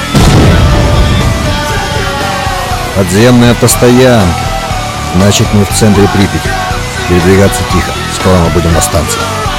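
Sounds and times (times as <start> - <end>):
grenade explosion in a video game: 0.1 - 2.9
speech: 3.0 - 4.5, 5.1 - 9.4.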